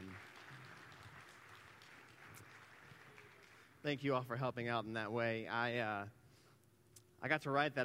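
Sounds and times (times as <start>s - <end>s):
crowd applauding: 0.0s - 4.1s
speech: 3.8s - 6.2s, 7.2s - 7.8s.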